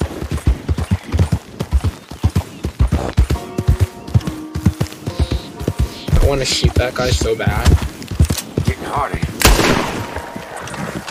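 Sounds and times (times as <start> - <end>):
video game horse galloping along a railroad track: 0.0 - 11.1
speech: 6.3 - 7.9, 8.9 - 9.4.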